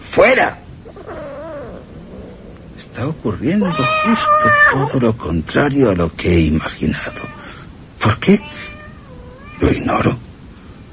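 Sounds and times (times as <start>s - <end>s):
low rumbling background: 0.0s - 10.9s
speech: 0.2s - 0.6s, 2.8s - 7.4s, 8.0s - 8.5s, 9.6s - 10.2s
cat yowling: 0.8s - 2.8s, 3.4s - 5.0s, 7.0s - 7.6s, 8.4s - 9.8s.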